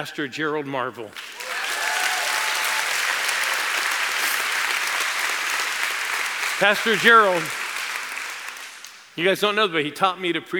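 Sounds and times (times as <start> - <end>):
speech: 0.0 - 1.4, 6.6 - 7.6, 9.2 - 10.5
audience applause of many hands clapping: 1.2 - 9.1.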